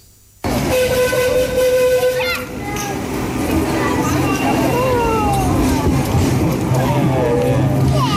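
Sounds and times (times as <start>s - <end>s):
bustling street activity in town: 0.4s - 8.1s
train rumbling past through town: 0.4s - 8.1s
children's voices: 2.0s - 8.1s.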